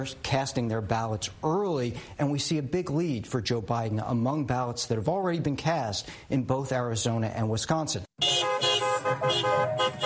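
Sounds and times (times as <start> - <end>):
speech: 0.0 - 8.3, 9.2 - 10.0
several car horns honking together: 8.2 - 10.0.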